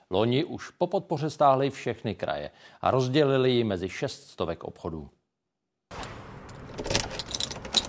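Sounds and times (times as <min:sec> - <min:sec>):
speech: 0:00.1 - 0:05.2
shop door being unlocked and opened: 0:05.9 - 0:07.8
steady outdoor hum: 0:05.9 - 0:07.8
shop door lock clicking: 0:06.4 - 0:07.8
keys jangling: 0:06.5 - 0:07.8.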